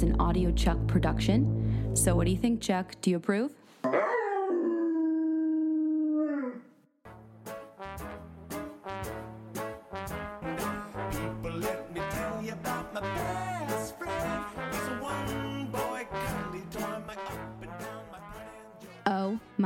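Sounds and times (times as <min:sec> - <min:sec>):
upbeat music with a driving beat: 0:00.0 - 0:03.0, 0:07.2 - 0:19.6
speech: 0:00.1 - 0:04.0
dog howling: 0:03.9 - 0:06.8.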